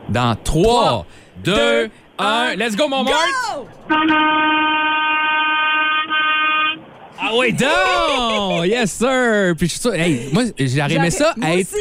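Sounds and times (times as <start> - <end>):
faint noise: 0.0 - 11.7
speech: 0.1 - 4.9, 7.2 - 11.7
many car and truck horns honking together: 3.1 - 8.8
loud steady horn blaring: 3.8 - 6.9
laughter: 7.6 - 9.0, 10.0 - 11.2.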